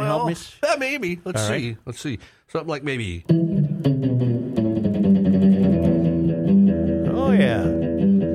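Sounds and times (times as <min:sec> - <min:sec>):
speech: 0:00.1 - 0:03.9
reverb-drenched surf guitar riff with twangy sustained notes: 0:03.3 - 0:08.3.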